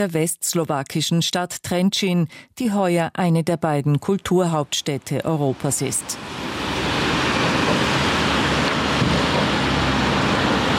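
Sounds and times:
speech: 0.0s - 6.5s
strong wind roaring on a bridge over the Váh river in Trenčín Slovakia: 6.1s - 10.7s.

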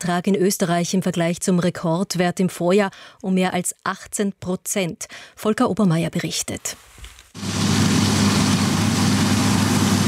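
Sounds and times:
speech: 0.0s - 7.6s
combine harvester or tractor engine running during the grain harvest in Austria: 7.4s - 10.0s.

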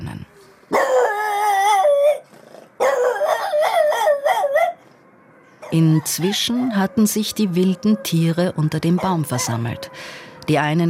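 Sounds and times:
dogs locked in their hut yelping and barking: 0.5s - 10.0s
dogs locked in their hut howling: 0.7s - 4.8s, 5.6s - 10.0s
speech: 5.7s - 10.8s.

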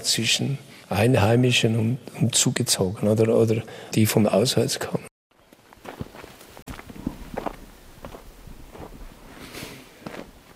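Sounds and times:
speech: 0.0s - 5.1s
footsteps of people walking through the lower part of a village: 5.3s - 10.5s.

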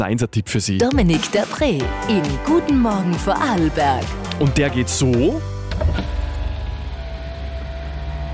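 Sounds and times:
speech: 0.0s - 5.9s
car electric window motor whirring as glass rolls down: 5.7s - 8.3s.

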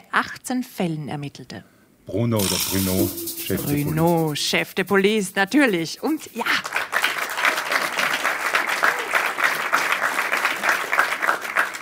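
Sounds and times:
speech: 0.2s - 6.8s
audience applause of many hands clapping: 6.6s - 11.8s.

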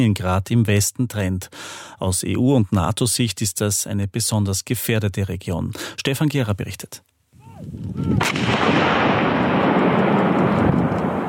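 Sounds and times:
speech: 0.0s - 9.3s
deep heavy rumble echoing across open ground: 8.0s - 11.2s
NATO artillery cannon firing live rounds: 8.2s - 11.2s.

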